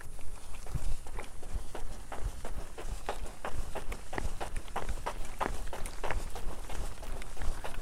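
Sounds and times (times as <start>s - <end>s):
running footsteps: 0.0s - 7.8s.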